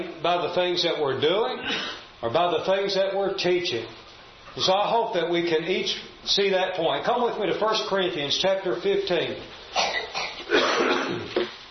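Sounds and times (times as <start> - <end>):
speech: 0.0 - 10.0
preacher coughing during a sermon: 9.8 - 11.4.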